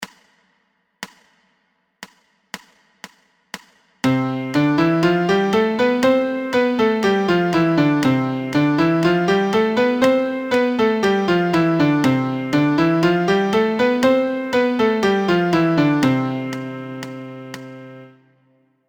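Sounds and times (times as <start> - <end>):
MIDI C major scale: 4.0 - 18.4.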